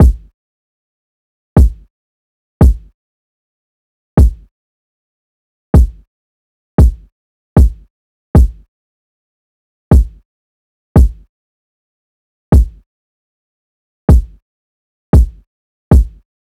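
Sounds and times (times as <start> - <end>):
kick drum loop at 115 BPM: 0.0 - 0.3, 1.6 - 1.9, 2.6 - 2.9, 4.2 - 4.4, 5.8 - 6.0, 6.8 - 8.6, 9.9 - 10.2, 11.0 - 11.2, 12.6 - 12.8, 14.1 - 14.4, 15.2 - 16.2.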